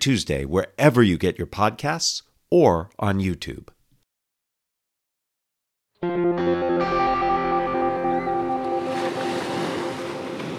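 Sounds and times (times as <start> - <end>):
speech: 0.0 - 3.8
sustained tonal chords: 6.0 - 9.8
Pacific Ocean surf at Carlsbad, California in summer: 8.0 - 10.5.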